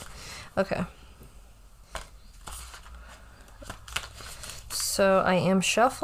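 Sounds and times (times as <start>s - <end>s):
speech: 0.6s - 1.0s, 5.0s - 6.0s
deck of tarot cards being shuffled: 1.9s - 5.0s.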